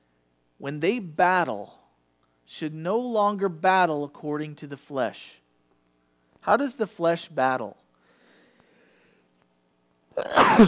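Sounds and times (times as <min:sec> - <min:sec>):
speech: 0:00.6 - 0:01.8, 0:02.5 - 0:05.4, 0:06.4 - 0:07.8, 0:10.2 - 0:10.6
person coughing into a microphone: 0:10.2 - 0:10.6.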